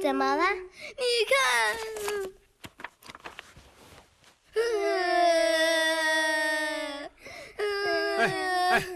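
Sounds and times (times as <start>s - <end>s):
speech: 0.0s - 2.4s, 4.6s - 6.0s
children crying: 4.6s - 8.9s.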